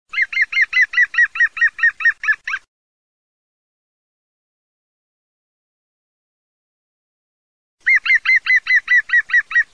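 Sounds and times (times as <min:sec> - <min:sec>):
green woodpecker call: 0:00.1 - 0:02.7, 0:07.8 - 0:09.7.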